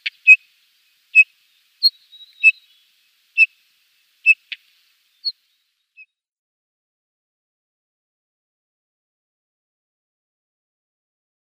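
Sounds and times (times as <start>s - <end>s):
Rufous-tailed Rock-Thrush whistled notes: 1.2s - 2.8s.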